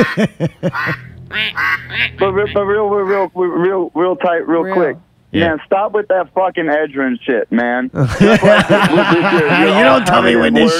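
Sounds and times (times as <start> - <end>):
laughter: 0.0 - 1.1, 8.0 - 10.7
ducks quacking: 0.0 - 3.4
speech: 0.0 - 10.7.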